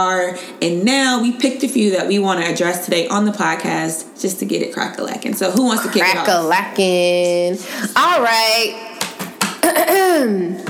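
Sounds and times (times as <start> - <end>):
speech: 0.0 - 8.9, 9.7 - 10.6
woman clearing her throat: 9.6 - 10.6.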